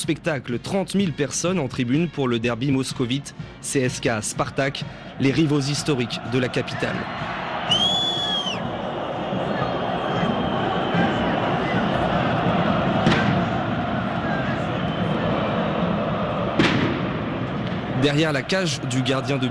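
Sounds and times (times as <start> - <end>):
speech: 0.0 - 7.9, 18.0 - 19.4
stadium ultras chanting and roaring behind the goal: 5.3 - 19.4
shrill whistling: 7.7 - 8.6
big firecrackers exploding: 16.6 - 17.9.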